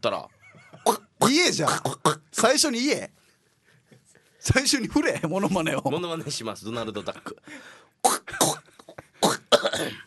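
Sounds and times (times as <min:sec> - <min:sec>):
speech: 0:00.0 - 0:00.3, 0:00.9 - 0:03.2, 0:04.4 - 0:08.4, 0:09.8 - 0:10.0
man clearing his throat: 0:08.0 - 0:10.0.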